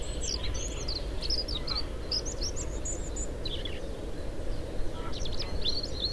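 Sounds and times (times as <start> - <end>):
European robin Erithacus rubecula singing: 0.0 - 3.8, 4.5 - 6.1.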